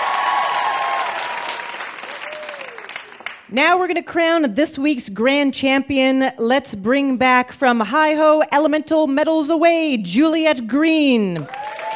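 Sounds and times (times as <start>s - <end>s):
studio audience applause: 0.0s - 3.5s, 11.4s - 11.9s
scattered claps: 0.5s - 3.5s
speech: 3.5s - 11.6s.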